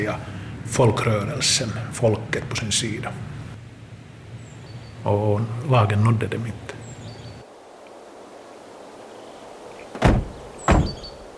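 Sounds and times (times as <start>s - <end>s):
speech: 0.0s - 3.4s, 5.0s - 6.7s
car doors thudding as two men get out: 9.9s - 11.2s.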